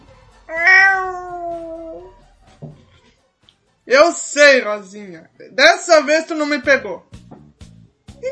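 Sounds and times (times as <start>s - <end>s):
cat meowing: 0.5s - 2.1s
speech: 3.9s - 7.1s.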